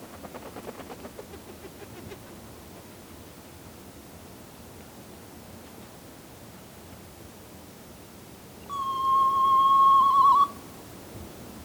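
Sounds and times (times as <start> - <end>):
low hiss: 0.0 - 11.6
soft-plumaged petrel Pterodroma mollis whistling: 8.7 - 10.6.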